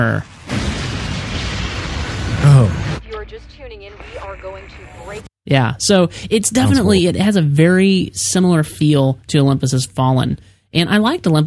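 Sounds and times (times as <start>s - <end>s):
speech: 0.0s - 0.3s, 2.4s - 11.4s
movie trailer explosion: 0.2s - 3.0s.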